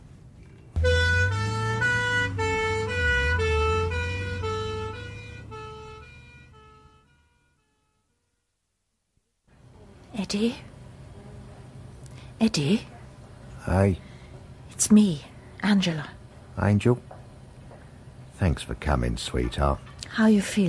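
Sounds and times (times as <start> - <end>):
ambulance siren wailing in a two-tone pattern: 0.8 - 7.7
speech: 10.3 - 10.7, 12.4 - 12.9, 13.6 - 14.1, 14.8 - 17.1, 18.4 - 20.6.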